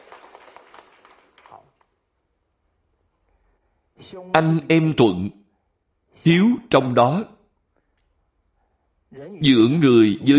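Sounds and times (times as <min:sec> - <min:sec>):
crowd applauding in a reverberant room: 0:00.0 - 0:01.8
speech: 0:04.0 - 0:05.4, 0:06.2 - 0:07.4, 0:09.1 - 0:10.3.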